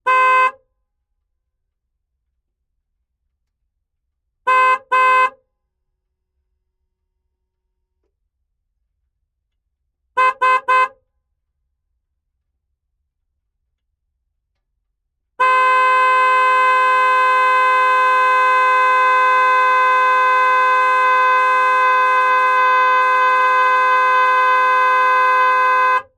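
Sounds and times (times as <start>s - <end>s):
Chevrolet Silverado tow truck onboard horn: 0.0s - 0.6s, 4.5s - 5.4s, 10.2s - 11.0s, 15.4s - 26.1s.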